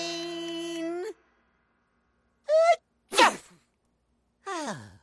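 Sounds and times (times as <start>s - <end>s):
person sneezing loudly: 2.5s - 3.7s.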